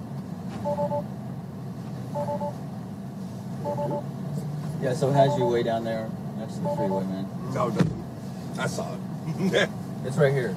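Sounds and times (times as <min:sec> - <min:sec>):
Tesla car pulling up with road rumble: 0:00.0 - 0:10.5
short two-tone beeps: 0:00.6 - 0:01.0, 0:02.2 - 0:02.6, 0:03.6 - 0:04.0, 0:05.2 - 0:05.6, 0:06.6 - 0:07.1
speech: 0:04.8 - 0:08.0, 0:08.6 - 0:10.5.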